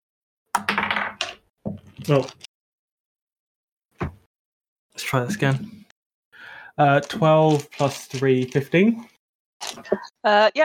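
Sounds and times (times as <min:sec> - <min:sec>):
physical dice clattering across a hard tabletop: 0:00.6 - 0:01.4
speech: 0:02.0 - 0:02.5, 0:05.1 - 0:05.8, 0:06.8 - 0:09.1, 0:09.8 - 0:10.6.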